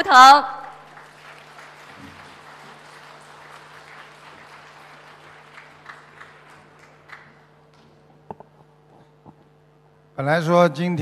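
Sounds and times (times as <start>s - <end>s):
large audience applauding at a Buddhist dharma assembly: 0.0s - 7.9s
faint steady hum: 0.0s - 11.0s
speech: 0.1s - 0.6s, 10.2s - 11.0s.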